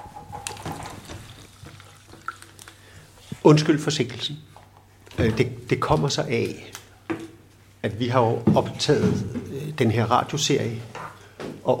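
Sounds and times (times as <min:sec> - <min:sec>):
water pouring and trickling into a glass: 0:01.2 - 0:02.8
speech: 0:03.4 - 0:04.5, 0:05.2 - 0:06.8, 0:07.8 - 0:11.0.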